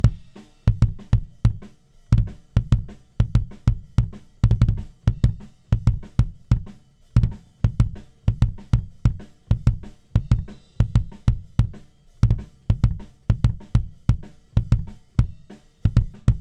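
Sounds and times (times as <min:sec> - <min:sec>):
wet kick drum: 0:00.0 - 0:16.3.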